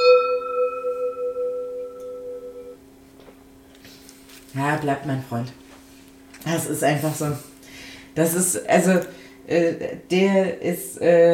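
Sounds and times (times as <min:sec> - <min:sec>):
gong struck as the signal to start drinking during a tasting: 0:00.0 - 0:02.8
speech: 0:04.6 - 0:05.6, 0:06.4 - 0:07.5, 0:08.2 - 0:11.3.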